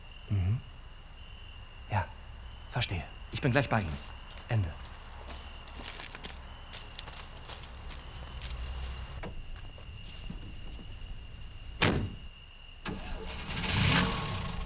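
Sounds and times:
car engine cranking and catching into a rough idle: 0:00.7 - 0:14.6
speech: 0:02.8 - 0:04.8
car door clunks as someone gets into a car: 0:07.0 - 0:14.6.

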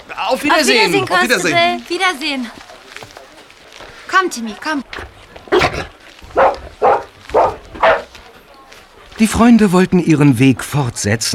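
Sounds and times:
speech: 0:00.2 - 0:02.6, 0:04.2 - 0:06.6, 0:09.2 - 0:11.3
dog barking loudly in greeting: 0:05.5 - 0:08.1.

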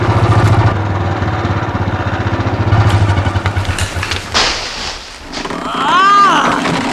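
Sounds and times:
heavy motorcycle engine rumbling: 0:00.0 - 0:06.9
motorcycle crashing through branches and leaves into a pit: 0:02.8 - 0:06.9
person giving a short startled cry: 0:05.5 - 0:06.8.

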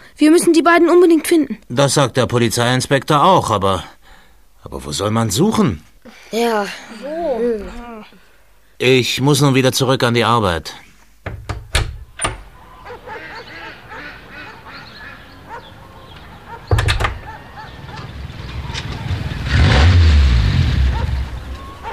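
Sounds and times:
speech: 0:00.2 - 0:04.0, 0:04.6 - 0:08.2, 0:08.8 - 0:11.5
car pulling up with low engine rumble: 0:15.4 - 0:21.9.

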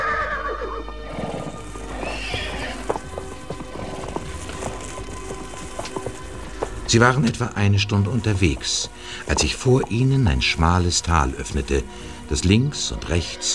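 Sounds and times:
horse whinnying: 0:00.0 - 0:06.6
horse hooves clip-clopping: 0:00.9 - 0:13.5
low ambient rumble: 0:01.5 - 0:13.5
speech: 0:06.9 - 0:13.5.

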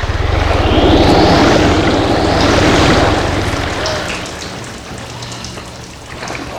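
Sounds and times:
deep throbbing rumble: 0:00.0 - 0:05.2
loud rushing surge of water: 0:00.6 - 0:06.5.

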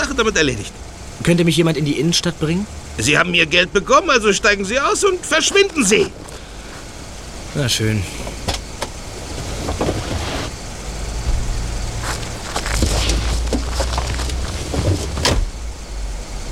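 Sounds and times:
car engine rumbling as the vehicle pulls away: 0:00.0 - 0:16.5
speech: 0:00.2 - 0:06.4, 0:07.6 - 0:08.3
sharp clunks and rattles: 0:04.7 - 0:07.1, 0:08.1 - 0:10.5, 0:11.2 - 0:15.9.

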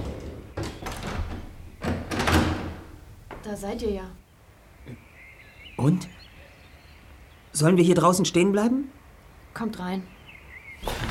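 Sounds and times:
front door latch clicking and rattling: 0:00.0 - 0:03.4
speech: 0:03.5 - 0:04.2, 0:04.9 - 0:05.1, 0:05.8 - 0:06.1, 0:07.6 - 0:09.0, 0:09.6 - 0:10.2.

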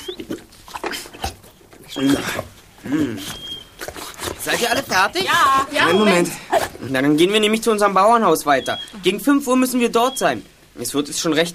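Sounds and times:
dog whimpering with rising whiny cries: 0:00.0 - 0:03.9, 0:04.5 - 0:07.0, 0:08.6 - 0:09.2
speech: 0:02.0 - 0:03.4, 0:04.4 - 0:11.5.

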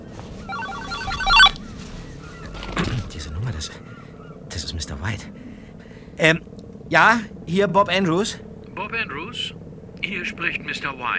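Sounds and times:
mobile phone ringing with melodic electronic ringtone: 0:00.4 - 0:01.6
speech: 0:02.8 - 0:04.0, 0:04.6 - 0:05.5, 0:06.2 - 0:11.1.

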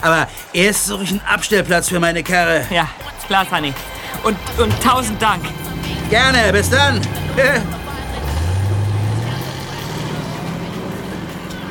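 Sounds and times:
speech: 0:00.0 - 0:07.8
VW bus engine rumbling as it drives away: 0:03.6 - 0:11.6.

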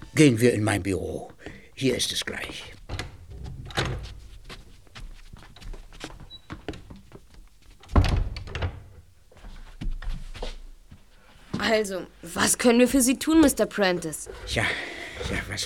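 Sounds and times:
speech: 0:00.2 - 0:02.8, 0:11.7 - 0:15.6
footsteps in a quiet room: 0:01.1 - 0:15.6
door thudding shut with a brief rattle: 0:07.8 - 0:09.0.

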